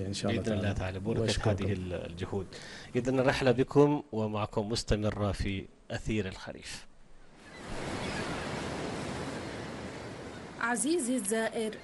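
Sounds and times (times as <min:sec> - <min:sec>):
speech: 0:00.0 - 0:06.9, 0:10.6 - 0:11.8
faint wind: 0:00.0 - 0:11.8
rough sea surf with crashing waves: 0:07.3 - 0:11.2.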